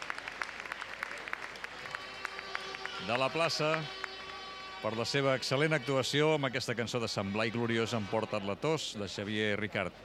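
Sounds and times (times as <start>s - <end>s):
crowd applauding in a town square after a song performance: 0.0s - 6.2s
speech: 3.0s - 4.0s, 4.8s - 10.0s.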